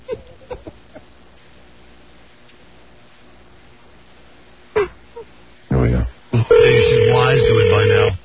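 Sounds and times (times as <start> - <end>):
faint hiss: 0.1 - 6.5
telephone dial tone: 6.5 - 8.1.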